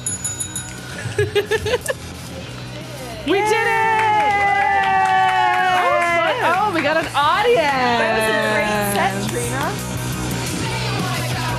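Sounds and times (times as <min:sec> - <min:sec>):
bell ringing in bright metallic dings: 0:00.0 - 0:01.1
speech: 0:01.2 - 0:02.0, 0:03.2 - 0:03.9, 0:06.4 - 0:09.9
faint murmur of voices: 0:02.2 - 0:11.5.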